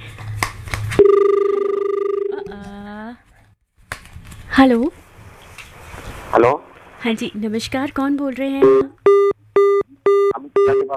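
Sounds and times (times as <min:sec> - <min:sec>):
loud steady electronic incoming call phone tone with warble: 0:01.0 - 0:02.4, 0:09.1 - 0:10.9
speech: 0:04.6 - 0:05.0, 0:06.4 - 0:09.2, 0:10.6 - 0:10.9.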